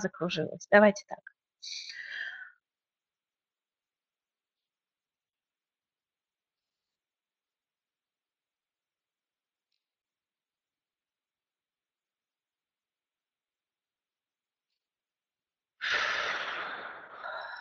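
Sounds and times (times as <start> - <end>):
speech: 0.0 - 2.2
short breathy inhale: 1.8 - 2.6, 15.8 - 17.5
long loud rushing exhale: 15.8 - 17.5.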